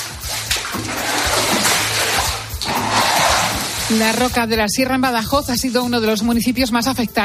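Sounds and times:
brief scooping splashes: 0:00.0 - 0:04.5
floodwater splashing and sloshing as neighbours bail it out of houses: 0:00.0 - 0:05.6
speech: 0:03.9 - 0:07.2.

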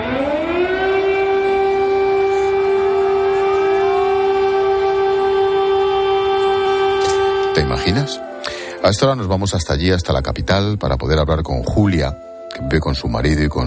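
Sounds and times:
air raid siren wailing: 0:00.0 - 0:09.2
speech: 0:07.6 - 0:13.6.

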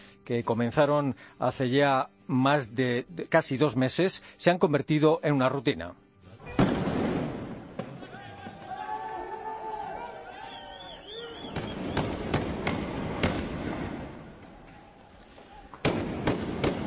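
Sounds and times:
speech: 0:00.3 - 0:06.0
restless crowd shouting in a street riot: 0:06.4 - 0:06.9, 0:07.7 - 0:12.3
sharp loud explosive bangs in a street riot: 0:06.5 - 0:08.0, 0:11.4 - 0:14.2, 0:15.8 - 0:16.8
rising wailing voices: 0:08.0 - 0:11.8.

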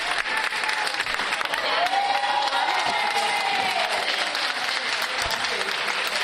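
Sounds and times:
health workers cheering and whooping: 0:00.0 - 0:04.8
crowd of health workers applauding: 0:00.0 - 0:06.2.

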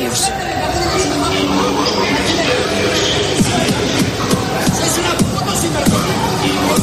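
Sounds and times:
dense agitated crowd of angry commuters shouting and chattering: 0:00.0 - 0:06.8.

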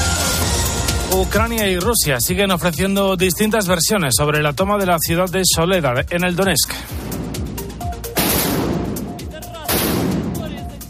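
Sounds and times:
speech: 0:01.1 - 0:07.2
big blasts with long rumbling echoes: 0:06.9 - 0:10.7
gunfire cracks in fighting for a town in Donetsk Ukraine: 0:08.2 - 0:09.0, 0:09.7 - 0:10.5
heavy artillery booms in fighting for a town in Donetsk Ukraine: 0:08.2 - 0:10.6.

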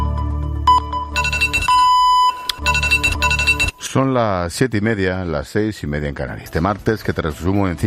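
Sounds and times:
mobile phone alarm ringing with electronic melody: 0:00.7 - 0:03.8
speech: 0:03.9 - 0:07.8.

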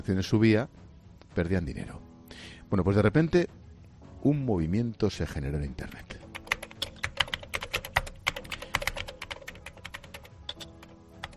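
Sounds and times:
speech: 0:00.0 - 0:00.8, 0:01.4 - 0:03.6, 0:04.2 - 0:06.2
many computer keyboards typing: 0:06.0 - 0:11.3.

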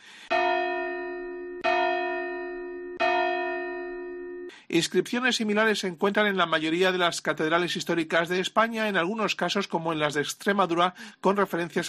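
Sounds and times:
large cathedral church bell ringing: 0:00.3 - 0:04.5
speech: 0:04.7 - 0:11.8.

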